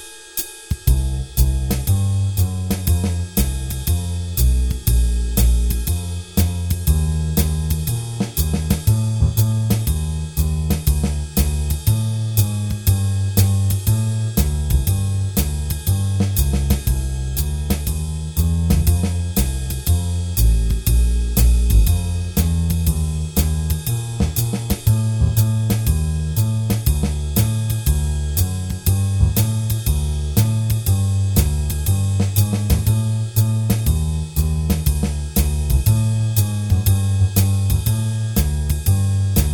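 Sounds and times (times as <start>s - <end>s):
bass drums: 0.7s - 39.5s.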